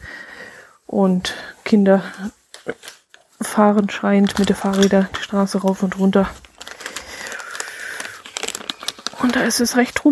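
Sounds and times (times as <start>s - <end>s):
speech: 0.9s - 2.9s, 3.6s - 6.4s, 9.4s - 10.1s
two small 100-gram plastic snack bags of nut and fruit mix crinkling: 2.1s - 10.1s.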